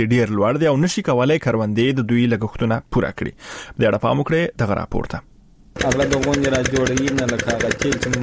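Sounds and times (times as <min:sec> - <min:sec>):
speech: 0:00.0 - 0:08.2
diesel generator engine driving a pump lifting water from deep wells in Kandahar: 0:05.8 - 0:08.2.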